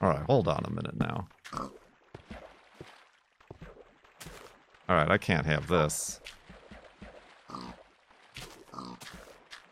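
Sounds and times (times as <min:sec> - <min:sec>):
speech: 0:00.0 - 0:01.8, 0:04.9 - 0:06.4
pigs grunting and oinking: 0:01.5 - 0:01.8, 0:07.5 - 0:07.8, 0:08.6 - 0:09.3.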